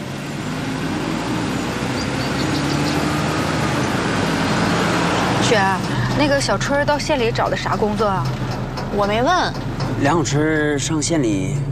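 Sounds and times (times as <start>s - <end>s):
car driving away: 0.0s - 11.6s
speech: 5.5s - 11.6s.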